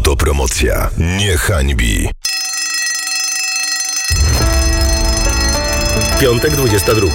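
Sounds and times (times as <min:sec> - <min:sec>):
speech: 0:00.1 - 0:02.3, 0:06.1 - 0:07.1
electric bell ringing: 0:02.3 - 0:07.1.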